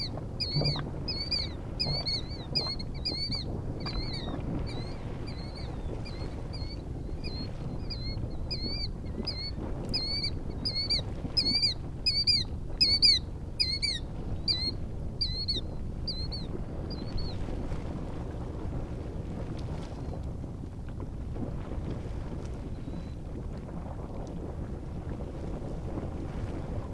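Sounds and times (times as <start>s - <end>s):
killdeer chorus at Anemone Geyser on Geyser Hill: 0.0s - 17.3s
soft background rumble: 0.0s - 26.9s.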